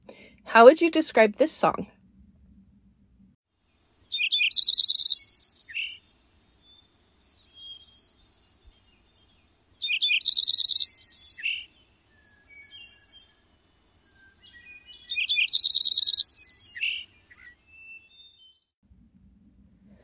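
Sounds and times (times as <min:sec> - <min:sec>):
speech: 0:00.5 - 0:02.0
Lincoln's sparrow singing bubbly musical trills: 0:04.1 - 0:18.7.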